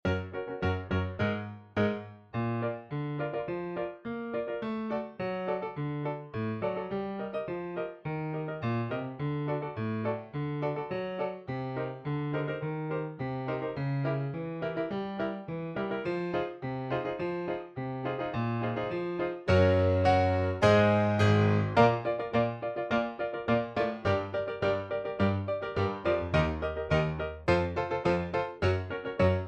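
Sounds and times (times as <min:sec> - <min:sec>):
piano solo: 0:00.0 - 0:29.4.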